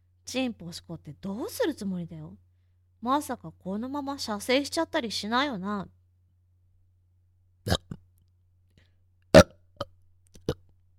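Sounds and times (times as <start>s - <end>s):
speech: 0.3s - 6.0s
burps: 7.7s - 8.1s, 9.3s - 10.7s.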